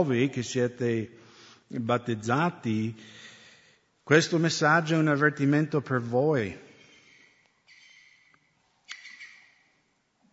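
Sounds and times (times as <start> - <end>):
speech: 0.0 - 3.2, 4.1 - 6.7
birds calling from a nearby bird preserve: 6.7 - 8.3, 8.9 - 9.6.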